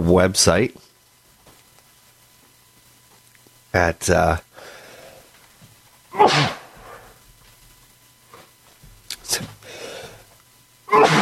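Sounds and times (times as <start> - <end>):
speech: 0.1 - 0.9, 3.7 - 4.7, 6.2 - 6.6, 9.3 - 9.6
person sneezing: 6.1 - 7.1, 10.9 - 11.2.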